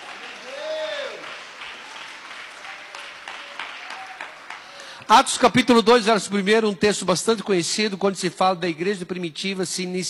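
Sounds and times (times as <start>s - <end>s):
church audience clapping in praise of God: 0.0s - 5.5s
speech: 5.1s - 10.0s.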